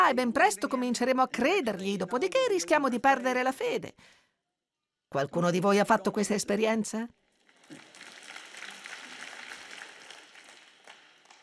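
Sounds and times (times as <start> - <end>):
speech: 0.1 - 4.2, 5.1 - 7.9
scattered lukewarm audience applause: 7.5 - 11.4.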